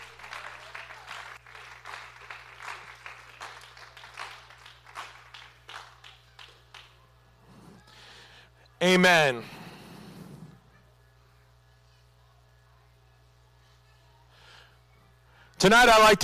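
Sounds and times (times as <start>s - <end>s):
audience clapping hands at a night service: 0.0s - 7.2s
low electrical hum: 0.0s - 16.2s
speech: 8.8s - 9.6s, 15.6s - 16.2s.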